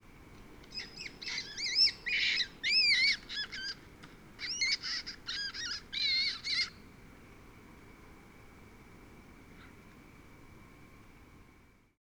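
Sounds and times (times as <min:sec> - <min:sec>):
adult long-eared owl distraction display: 0:00.7 - 0:06.8.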